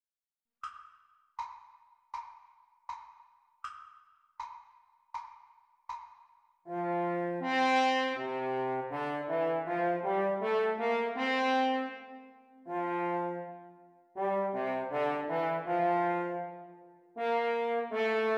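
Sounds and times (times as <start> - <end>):
French horn duet playalong for practice: 6.7 - 18.3.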